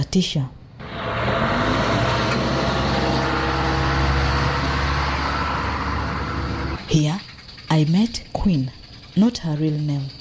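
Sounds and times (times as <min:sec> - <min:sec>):
speech: 0:00.1 - 0:00.6, 0:06.9 - 0:07.2, 0:07.8 - 0:10.1
road noise: 0:00.6 - 0:07.7
motorcycle taxi engine humming while riding along a road: 0:00.8 - 0:07.0.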